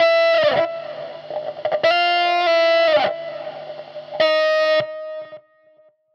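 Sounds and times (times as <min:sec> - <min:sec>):
hip-hop guitar line at 100 bpm: 0:00.0 - 0:03.5, 0:04.1 - 0:05.2.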